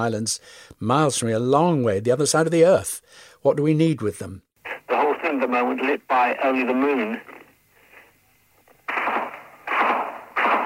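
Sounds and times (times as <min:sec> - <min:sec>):
speech: 0:00.0 - 0:07.4
heavy bursts of gunfire at night during the Falklands War: 0:08.9 - 0:10.6.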